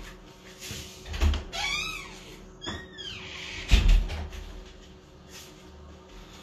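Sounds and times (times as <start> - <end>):
door creaking open on squeaky hinges: 1.2 - 4.2.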